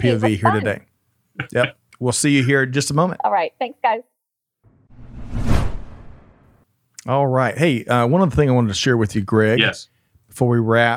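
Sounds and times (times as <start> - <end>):
speech: 0.0 - 4.1, 7.1 - 10.9
broadband transitional swoosh: 4.8 - 6.6.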